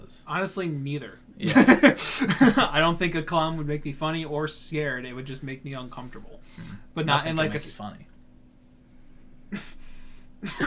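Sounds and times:
speech: 0.1s - 8.1s, 9.5s - 9.8s, 10.4s - 10.6s
faint breathy hiss: 1.0s - 10.6s
short raspy coughs: 1.4s - 2.8s, 9.5s - 10.6s
laughter: 1.4s - 3.7s, 6.6s - 7.8s.

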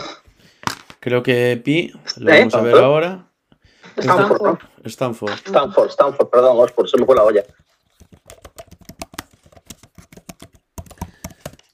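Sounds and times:
speech: 1.0s - 3.3s, 4.0s - 7.7s
typing on a computer keyboard: 7.0s - 11.7s.

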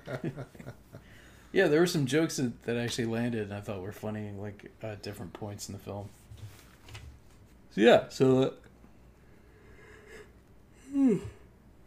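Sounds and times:
speech: 0.1s - 6.2s, 7.7s - 8.6s
person yawning: 10.8s - 11.5s.

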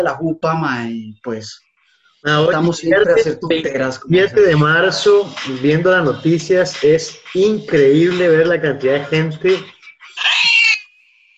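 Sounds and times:
speech: 0.0s - 10.3s
startled cat yowling: 10.2s - 10.8s.

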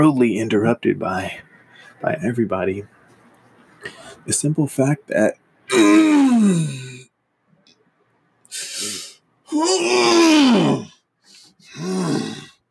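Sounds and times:
speech: 0.0s - 3.0s, 3.8s - 6.9s, 9.5s - 10.9s, 11.8s - 12.4s
person yawning with drawn-out voiced moans: 5.7s - 7.0s, 8.5s - 10.9s, 11.7s - 12.5s.

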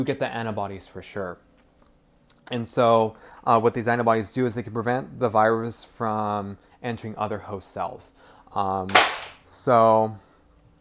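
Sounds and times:
speech: 0.0s - 1.5s, 2.5s - 10.3s
keys dropping: 8.9s - 9.4s.

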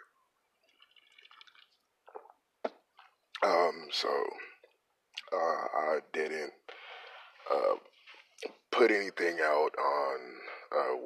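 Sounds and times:
quick sip of a drink with slurping and swallow: 0.7s - 3.4s
speech: 3.4s - 4.4s, 5.3s - 6.6s, 7.5s - 11.0s
loud breathy exhale: 6.7s - 7.5s.

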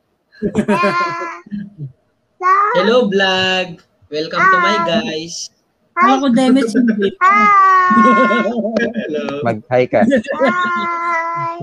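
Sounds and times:
laughter: 0.4s - 1.5s, 6.4s - 11.6s
speech: 0.4s - 11.6s
young child babbling: 0.7s - 1.5s, 2.4s - 3.2s, 4.3s - 5.2s, 6.0s - 8.5s, 10.3s - 11.6s.

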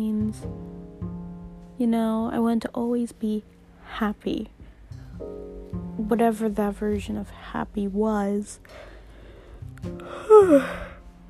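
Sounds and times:
speech: 0.0s - 0.7s, 1.8s - 4.6s, 5.2s - 8.9s, 9.8s - 10.9s
person yawning with a voiced groan: 10.1s - 11.0s.

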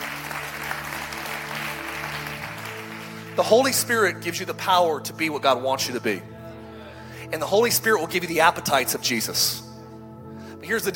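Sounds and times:
audience applause from many hands: 0.0s - 3.8s
speech: 3.4s - 6.3s, 7.3s - 9.7s, 10.6s - 10.9s.

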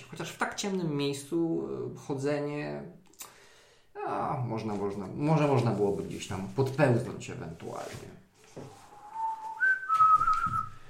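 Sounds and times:
speech: 0.1s - 3.0s, 4.1s - 8.8s
rustling: 4.6s - 10.8s
person whistling a tune: 8.7s - 10.8s.

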